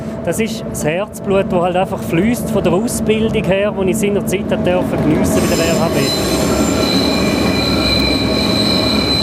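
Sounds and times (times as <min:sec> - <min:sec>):
heavy rumbling roar of the moving train: 0:00.0 - 0:09.2
speech: 0:00.2 - 0:06.5
train wheels squealing on rails from St. Moritz to the Bernina Pass: 0:05.2 - 0:09.2.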